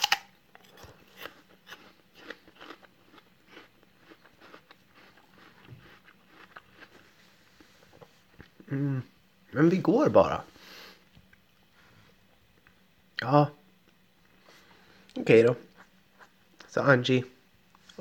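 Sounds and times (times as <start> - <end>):
teeth biting into and chewing an apple: 0.0 - 8.7
speech: 8.7 - 10.5, 13.2 - 13.6, 15.2 - 15.7, 16.7 - 17.3.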